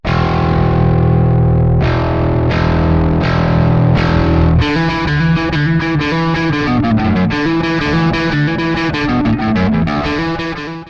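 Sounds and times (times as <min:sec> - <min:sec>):
overdriven bass solo: 0:00.1 - 0:10.8.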